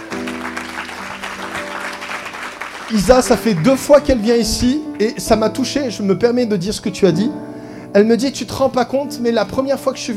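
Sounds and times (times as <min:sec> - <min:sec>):
audience applause at a gathering: 0:00.0 - 0:04.4
speech: 0:02.9 - 0:10.1.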